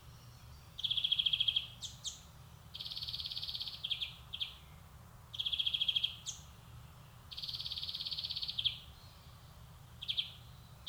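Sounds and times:
European greenfinch short chirps: 0:00.0 - 0:06.5, 0:07.3 - 0:10.8
low background noise: 0:00.0 - 0:10.8
European greenfinch buzzy twittering phrase: 0:00.8 - 0:04.6, 0:05.3 - 0:06.5, 0:07.3 - 0:09.3, 0:10.0 - 0:10.8.

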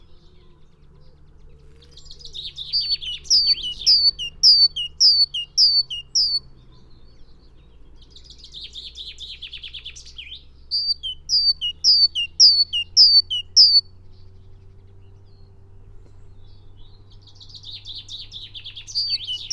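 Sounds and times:
Great tit Parus major singing: 0:00.0 - 0:19.5
Great tit Parus major dry buzzy churr: 0:02.2 - 0:06.4, 0:10.7 - 0:13.8, 0:18.8 - 0:19.5.

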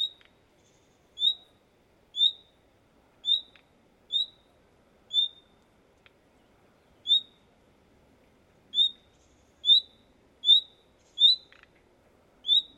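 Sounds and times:
Common nightingale short whistled calls: 0:00.0 - 0:01.5, 0:02.2 - 0:02.5, 0:03.2 - 0:04.5, 0:05.1 - 0:05.5, 0:07.0 - 0:07.4, 0:08.7 - 0:11.6, 0:12.4 - 0:12.7.

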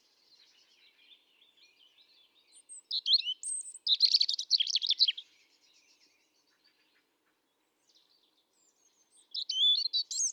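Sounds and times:
European robin Erithacus rubecula singing: 0:00.5 - 0:05.3, 0:08.6 - 0:10.3.

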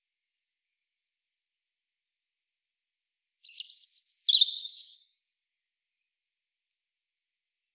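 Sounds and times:
European robin Erithacus rubecula singing: 0:03.2 - 0:05.2.

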